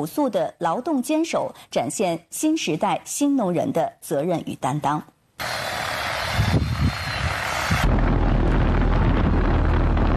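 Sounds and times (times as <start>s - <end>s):
speech: 0.0s - 5.6s
crop-spraying agricultural drone rotors whirring over a wheat field: 5.4s - 9.8s.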